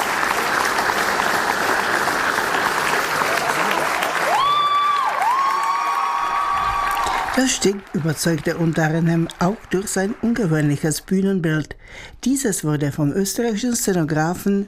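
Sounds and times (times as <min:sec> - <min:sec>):
large audience applause at a theatre performance: 0:00.0 - 0:11.0
speech: 0:07.4 - 0:14.6.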